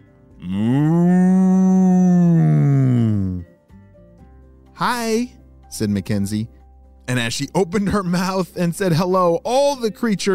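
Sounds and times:
cow mooing: 0.4s - 3.4s
speech: 4.8s - 10.3s.

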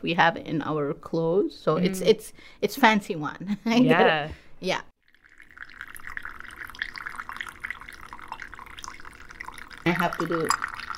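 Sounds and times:
speech: 0.0s - 4.9s, 9.8s - 10.7s
coffee poured from height into small handleless Eritrean-Ethiopian style coffee cup: 5.0s - 10.9s.

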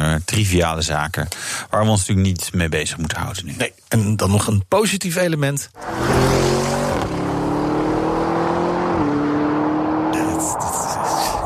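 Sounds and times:
speech: 0.2s - 6.8s
SUV engine revving and droning: 5.8s - 11.2s.

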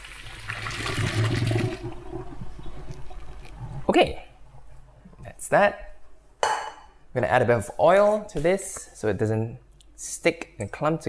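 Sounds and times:
pasta cooking water poured from a pot through a colander into a sink: 0.0s - 3.9s
speech: 4.0s - 4.2s, 5.5s - 5.9s, 7.1s - 11.0s.

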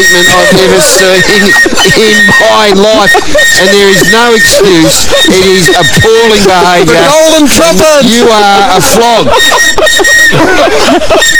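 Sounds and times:
shrill whistle blown by a grown man: 0.0s - 7.3s, 9.3s - 10.5s
speech: 0.0s - 11.3s
wavering voices laughing or shrieking excitedly: 0.0s - 11.3s.

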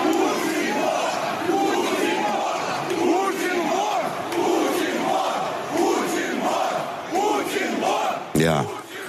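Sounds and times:
large crowd of protesters chanting a slogan in unison: 0.0s - 9.0s.

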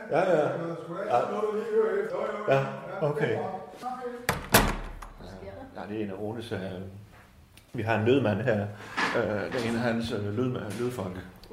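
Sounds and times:
speech: 0.1s - 4.4s, 5.8s - 7.1s, 7.7s - 11.5s
door slamming shut with a heavy sharp bang: 4.3s - 5.2s.

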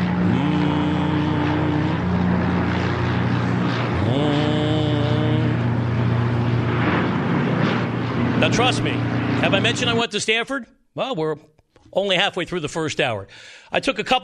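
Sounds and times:
blimp engine drone: 0.0s - 10.4s
speech: 8.5s - 14.2s.

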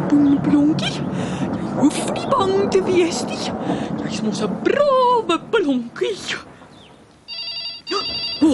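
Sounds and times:
speech: 0.2s - 6.5s, 7.9s - 8.5s
telephone bell ringing: 7.3s - 8.5s.

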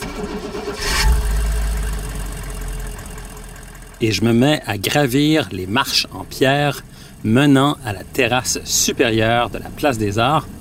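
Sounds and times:
truck engine cranking and starting: 0.0s - 10.5s
speech: 4.0s - 10.5s.

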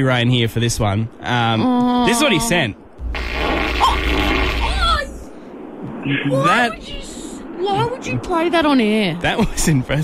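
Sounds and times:
speech: 0.0s - 3.2s, 6.1s - 10.0s
long sputtering real fart: 3.1s - 5.0s.

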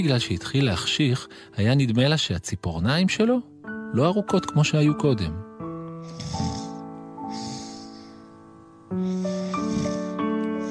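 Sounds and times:
speech: 0.0s - 5.5s
tiger snoring with small raspy breaths: 6.0s - 8.2s, 9.0s - 10.6s.

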